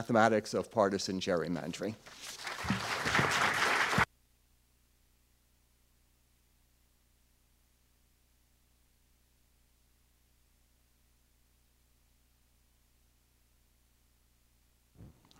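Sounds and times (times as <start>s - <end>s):
speech: 0.0s - 3.6s
audience applause welcoming a professor giving a talk: 2.1s - 4.1s.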